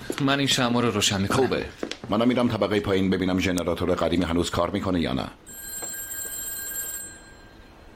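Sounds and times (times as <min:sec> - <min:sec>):
speech: 0:00.2 - 0:05.7
telephone ringing: 0:05.5 - 0:07.9.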